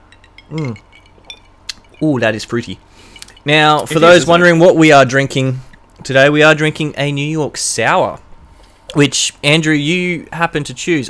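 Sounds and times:
cocktail glasses clinking in a toast: 0.0 - 4.5
hum-like vocal sound: 0.5 - 0.8
speech: 0.5 - 0.9, 2.0 - 8.2, 8.9 - 11.0.

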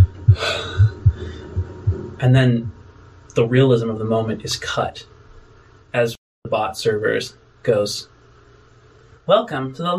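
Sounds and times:
deep heartbeat: 0.0 - 2.8
soft breathy gasp: 0.3 - 1.6
speech: 2.2 - 2.8, 3.4 - 5.1, 5.9 - 8.1, 9.3 - 9.9.

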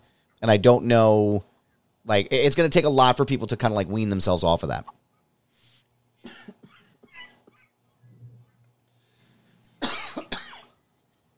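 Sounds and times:
faint hum: 0.0 - 11.3
speech: 0.4 - 5.0
person coughing in a rough hacking fit: 6.2 - 7.8, 9.8 - 10.7.

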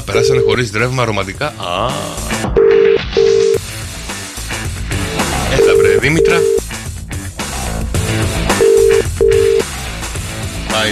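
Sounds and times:
busy music bed: 0.0 - 10.9
telephone call connecting to a voicemail answering machine: 0.1 - 0.6, 5.6 - 6.6, 8.6 - 9.6
speech: 0.1 - 2.4, 6.0 - 6.6, 10.8 - 10.9.

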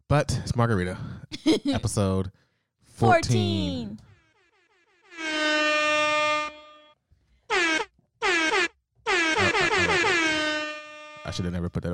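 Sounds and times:
speech: 0.1 - 2.4, 3.0 - 4.1, 11.3 - 11.9
air horn blasts: 4.1 - 11.6.

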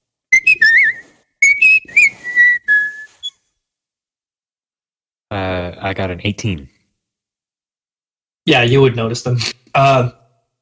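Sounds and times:
person whistling a short bright tune: 0.3 - 3.5
speech: 5.3 - 6.7, 8.5 - 10.2.

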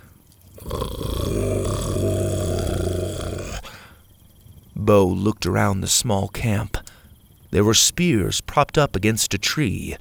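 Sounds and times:
dinosaur growling with its head lowered: 0.6 - 3.8
speech: 4.9 - 6.8, 7.5 - 9.9.

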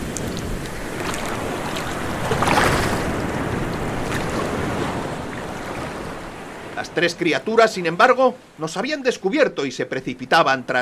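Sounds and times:
wind buffeting the microphone: 0.0 - 6.8
rough sea with waves crashing: 0.0 - 10.7
speech: 6.8 - 10.7.

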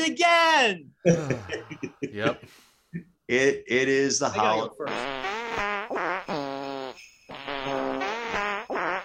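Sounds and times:
speech: 0.0 - 6.1
laughter: 1.1 - 2.5
buzzy drawn-out fart noises: 4.9 - 9.0.

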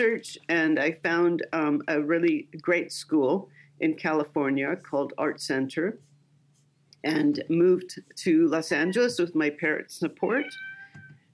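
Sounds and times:
speech: 0.0 - 6.1, 7.0 - 10.7
cat giving a short high meow: 10.3 - 11.1.

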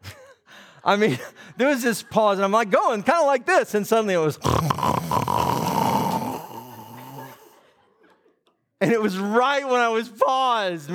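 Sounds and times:
speech: 0.8 - 5.4, 8.9 - 10.9
man vocally imitating a loud snore: 4.4 - 7.6.

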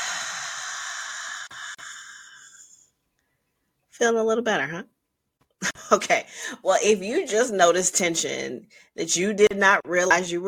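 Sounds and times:
breathing in through the nose and out through the mouth: 0.0 - 3.3
speech: 4.0 - 5.0, 5.7 - 10.4.

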